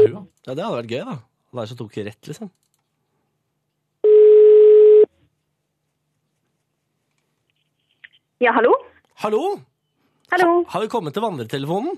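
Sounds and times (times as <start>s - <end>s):
speech: 0.1s - 2.6s, 8.4s - 9.7s, 10.3s - 11.9s
telephone ringing tone on call line: 4.0s - 5.1s.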